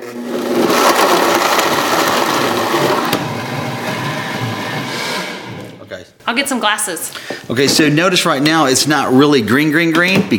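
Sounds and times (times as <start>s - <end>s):
blender motor whirring and grinding through a frozen drink with water: 0.0s - 5.8s
speech: 6.4s - 10.3s.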